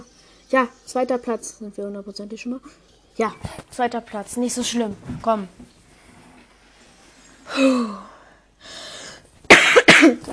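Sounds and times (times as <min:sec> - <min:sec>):
speech: 0:00.5 - 0:05.8, 0:07.6 - 0:08.8
soft breathy inhale: 0:07.5 - 0:09.3
harsh chesty coughs: 0:09.5 - 0:10.3.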